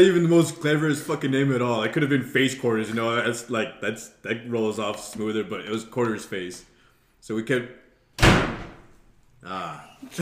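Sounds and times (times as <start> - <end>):
speech: 0.0 - 8.4, 9.4 - 10.2
door slamming: 8.2 - 9.0.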